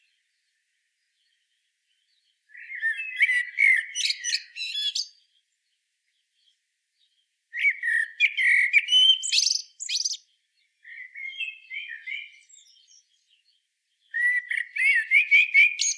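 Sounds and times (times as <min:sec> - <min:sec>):
Common blackbird Turdus merula singing: 0:02.5 - 0:05.2, 0:07.6 - 0:10.2, 0:10.8 - 0:15.9.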